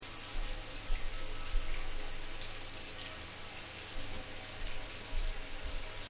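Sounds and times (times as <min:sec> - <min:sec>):
light shower running in bathroom: 0:00.0 - 0:06.0.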